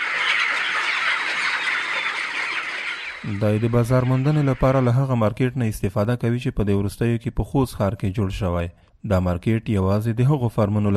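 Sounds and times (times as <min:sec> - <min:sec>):
chickens clucking on a poultry-rearing farm in Khost province, Afghanistan: 0:00.0 - 0:05.1
speech: 0:03.2 - 0:10.9.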